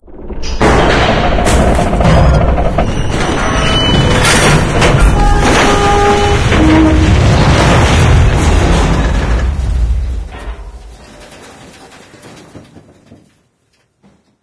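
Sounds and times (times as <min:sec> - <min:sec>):
train bridge collapsing: 0:00.1 - 0:14.4.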